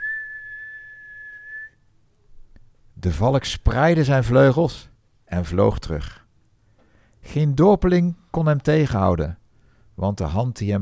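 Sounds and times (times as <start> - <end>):
steady whistle tone: 0.0 - 1.8
speech: 3.0 - 6.2, 7.2 - 9.4, 10.0 - 10.8.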